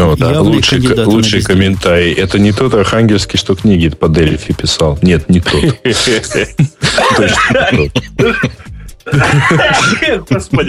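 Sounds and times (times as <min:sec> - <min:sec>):
speech: 0:00.1 - 0:10.6
laughter: 0:05.4 - 0:10.5
coughing fit brought on by laughing: 0:06.9 - 0:10.2.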